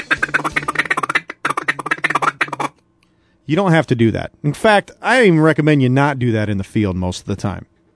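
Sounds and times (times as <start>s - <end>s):
feeding chuckle blown on a duck call in championship calling style: 0.0s - 2.8s
speech: 3.5s - 7.7s.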